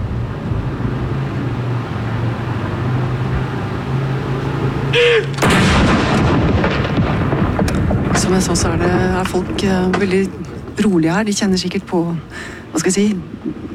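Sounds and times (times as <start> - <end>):
steady low outdoor rumble: 0.0 - 13.7
speech: 5.0 - 5.4, 8.3 - 13.7
ceremonial cannon salute shot at Akershus Fortress in Norway: 5.4 - 10.8.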